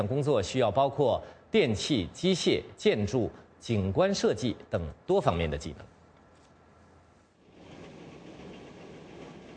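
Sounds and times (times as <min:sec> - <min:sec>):
speech: 0:00.0 - 0:06.0
train rumbling: 0:07.1 - 0:09.5.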